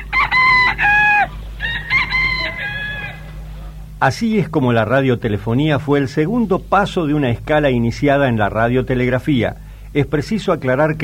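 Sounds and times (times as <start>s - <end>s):
rooster crowing: 0.0s - 3.8s
low hum: 0.0s - 11.0s
speech: 4.0s - 11.0s.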